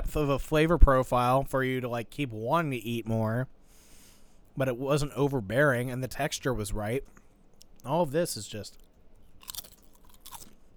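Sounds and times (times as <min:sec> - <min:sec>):
speech: 0:00.1 - 0:03.6, 0:04.6 - 0:07.2, 0:07.8 - 0:08.8
crisp crunching bites on a crispy taco: 0:08.7 - 0:10.7
quieter chewing: 0:08.7 - 0:10.7.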